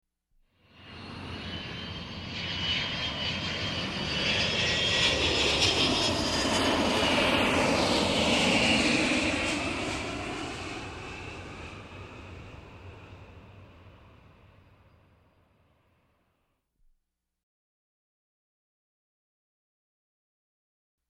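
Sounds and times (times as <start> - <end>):
jet airplane flyby overhead: 0.6 - 15.9.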